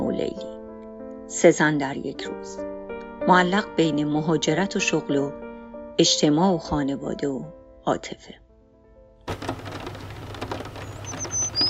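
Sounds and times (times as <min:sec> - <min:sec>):
speech: 0:00.2 - 0:00.5, 0:01.3 - 0:05.4, 0:06.0 - 0:08.4
steady pouring rain: 0:09.3 - 0:11.6
thin bird chirps: 0:09.3 - 0:11.6.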